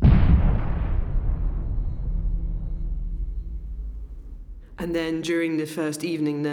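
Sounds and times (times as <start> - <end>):
heavy bomb blast during an air raid: 0.0 - 4.8
deep rolling rumble after a bomb blast: 0.0 - 5.2
speech: 4.8 - 6.5.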